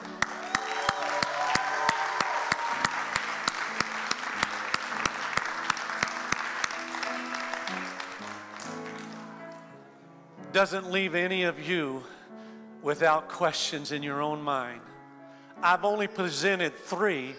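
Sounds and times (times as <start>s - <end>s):
steady rhythmic clap: 0.0s - 9.7s
church audience applauding and cheering: 0.0s - 9.8s
speech: 10.6s - 12.2s, 12.8s - 14.9s, 15.6s - 17.3s.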